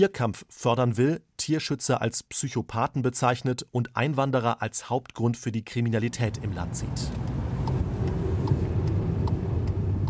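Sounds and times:
speech: 0.0s - 7.4s
car engine and tire rumble driving out of Malaga toward Almeria: 6.0s - 10.0s.

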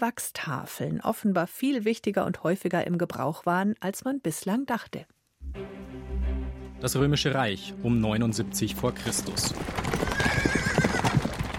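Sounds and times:
speech: 0.0s - 6.0s, 6.8s - 10.5s
horse hooves pounding over hard ground: 8.6s - 11.5s
horse whinnying: 9.7s - 11.5s.

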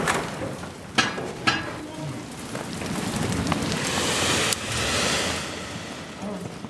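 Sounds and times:
sharp crackles: 0.0s - 6.6s
molten bronze rushing into bell molds: 2.9s - 6.6s.

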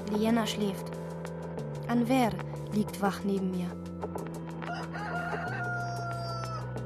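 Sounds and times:
speech: 0.1s - 1.0s, 1.9s - 3.8s
rooster crowing from a tape recording: 4.7s - 6.7s.

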